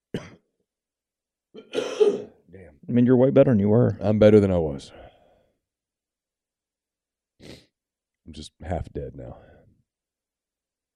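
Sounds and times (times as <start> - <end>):
person coughing: 0.1 - 0.5, 1.6 - 2.4
rough throat clearing: 0.1 - 0.5, 1.6 - 2.4
speech: 2.9 - 5.0, 8.3 - 9.5.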